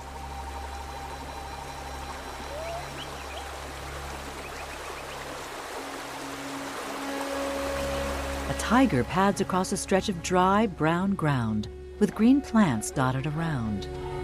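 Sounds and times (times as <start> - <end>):
water flowing over stones into a tranquil pool: 0.0 - 10.0
faint birdsong chirps: 0.1 - 6.8
speech: 8.6 - 14.1.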